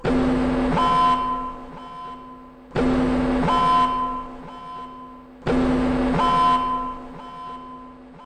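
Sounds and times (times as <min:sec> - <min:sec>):
red alert alarm: 0:00.0 - 0:08.2.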